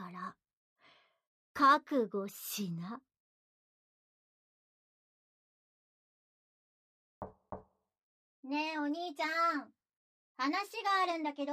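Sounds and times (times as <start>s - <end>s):
speech: 1.6s - 3.1s, 8.4s - 9.8s, 10.4s - 11.5s
firm knocks on a wooden door: 7.2s - 7.7s.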